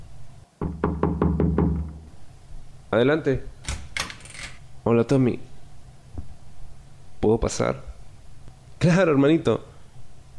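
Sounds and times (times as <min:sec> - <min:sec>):
knocks on a bedroom door at night: 0:00.6 - 0:02.1
speech: 0:02.9 - 0:03.6, 0:04.9 - 0:05.5, 0:07.2 - 0:07.9, 0:08.8 - 0:09.7.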